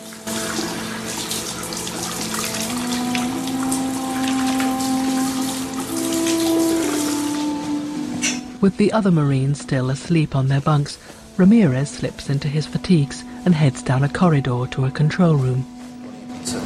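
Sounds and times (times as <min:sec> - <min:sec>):
tap water running into a sink basin: 0:00.0 - 0:08.6
speech: 0:08.6 - 0:15.8, 0:16.4 - 0:16.6.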